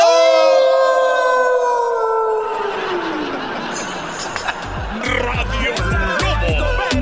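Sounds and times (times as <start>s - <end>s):
wolf howling: 0.0s - 3.2s
laughter: 1.8s - 7.0s.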